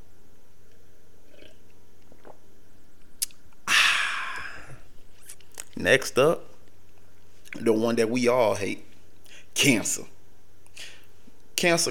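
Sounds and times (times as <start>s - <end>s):
person sipping a drink: 1.2s - 5.8s
soft wet mouth sounds: 3.1s - 5.8s
speech: 5.8s - 6.5s, 7.6s - 8.9s, 9.6s - 10.2s, 11.6s - 11.8s.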